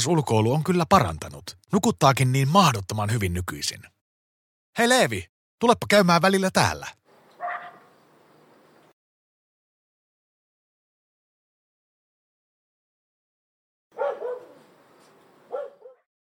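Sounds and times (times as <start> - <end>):
speech: 0.0 - 4.0, 4.8 - 7.0
large dog barking outdoors: 7.4 - 7.9, 14.0 - 14.6, 15.5 - 16.0.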